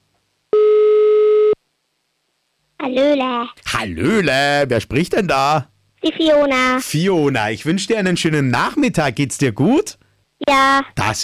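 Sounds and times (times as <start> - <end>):
telephone ringing tone on a call to a listener in Upper Austria: 0.5 - 1.6
speech: 2.8 - 11.2.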